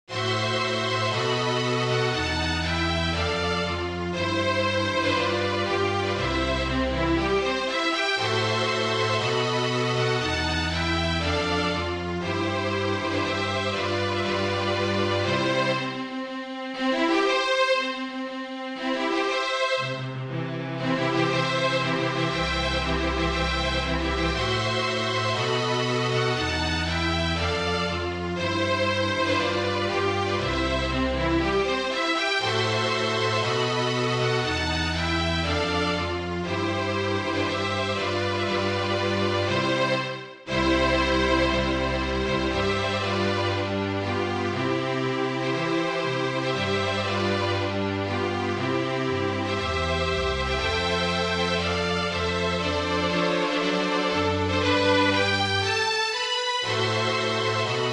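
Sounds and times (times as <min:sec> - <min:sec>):
string quartet playing a wedding march: 0:00.0 - 0:57.9.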